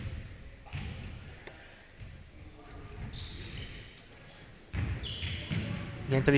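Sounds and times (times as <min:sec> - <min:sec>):
basketball bouncing on a hard court before a free throw: 0:00.0 - 0:01.2, 0:04.7 - 0:06.0
faint sneaker squeaks: 0:00.0 - 0:06.0
speech: 0:06.1 - 0:06.3.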